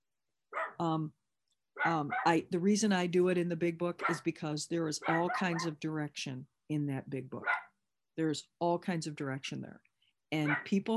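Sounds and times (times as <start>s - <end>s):
dog barking: 0.6s - 0.8s, 1.8s - 2.3s, 4.0s - 4.2s, 5.0s - 5.7s, 7.4s - 7.7s, 10.4s - 10.7s
speech: 0.8s - 1.2s, 1.8s - 7.6s, 8.2s - 10.9s.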